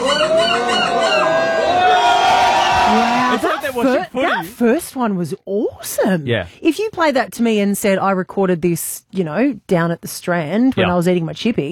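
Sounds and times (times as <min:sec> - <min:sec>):
loud crowd in Belgium whooping and cheering: 0:00.0 - 0:03.8
steady crowd hubbub: 0:00.0 - 0:04.5
speech: 0:03.8 - 0:11.7.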